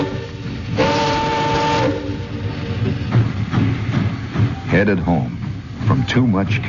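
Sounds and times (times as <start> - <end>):
freight train horn: 0.0 - 2.4
freight train rumbling through a rail yard: 0.0 - 6.6
speech: 4.8 - 5.4, 6.1 - 6.6.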